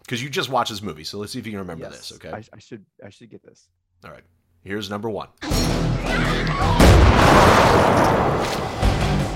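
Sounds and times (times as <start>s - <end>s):
speech: 0.1s - 7.3s
shotgun blast in a movie death scene: 6.8s - 9.2s.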